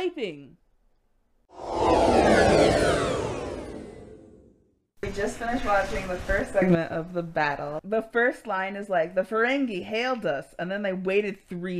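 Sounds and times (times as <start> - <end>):
speech: 0.0 - 0.6, 5.1 - 11.7
sci-fi warp engine effect with roaring whoosh and shimmering high sweeps: 1.5 - 4.6.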